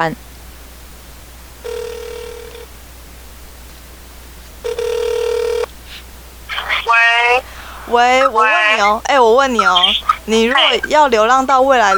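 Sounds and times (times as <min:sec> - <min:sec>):
speech: 0:00.0 - 0:00.3, 0:07.9 - 0:11.9
telephone ringing through the line: 0:01.6 - 0:02.8, 0:04.6 - 0:05.7, 0:06.8 - 0:11.9.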